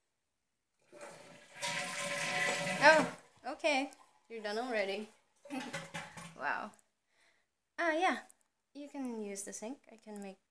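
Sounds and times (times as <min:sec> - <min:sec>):
toilet flushing: 0:00.8 - 0:06.4
speech: 0:03.6 - 0:05.8, 0:06.4 - 0:06.8, 0:07.8 - 0:10.4.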